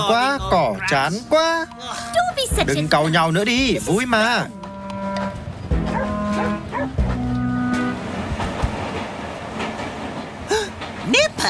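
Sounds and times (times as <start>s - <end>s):
speech: 0.0s - 4.6s
train running on rails: 0.0s - 11.4s
cattle mooing: 4.6s - 7.8s.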